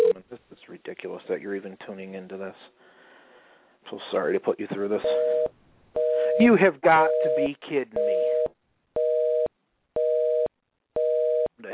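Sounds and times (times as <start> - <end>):
speech: 1.3 - 2.8, 3.8 - 5.6, 6.4 - 8.6
telephone dial tone beeps on a phone line: 5.0 - 11.5.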